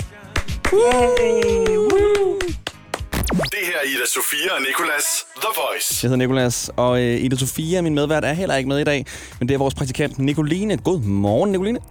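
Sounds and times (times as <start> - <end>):
sharp claps: 0.0 - 3.3
two hosts cheering together in chorus: 0.6 - 2.7
speech: 0.7 - 1.8, 3.6 - 11.8
short rising whoop: 0.7 - 2.6.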